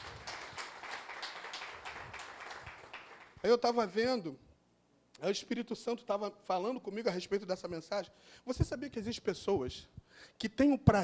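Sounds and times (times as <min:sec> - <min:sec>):
audience applauding: 0:00.0 - 0:03.4
speech: 0:03.4 - 0:04.5, 0:05.2 - 0:11.0.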